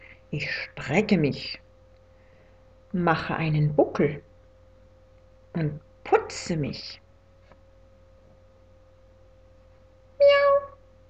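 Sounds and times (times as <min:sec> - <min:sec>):
speech: 0:00.3 - 0:01.6, 0:02.9 - 0:04.3, 0:05.6 - 0:07.0
person imitating a cat meowing: 0:10.2 - 0:10.8.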